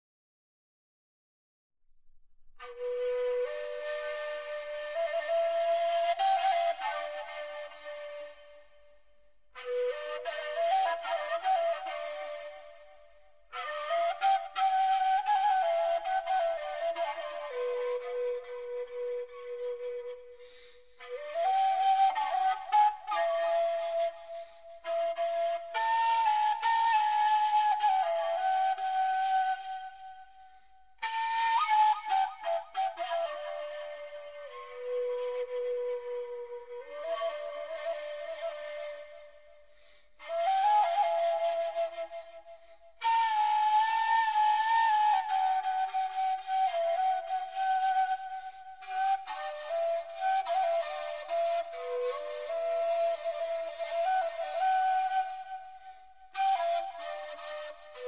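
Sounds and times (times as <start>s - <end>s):
ney flute: 2.6s - 58.0s.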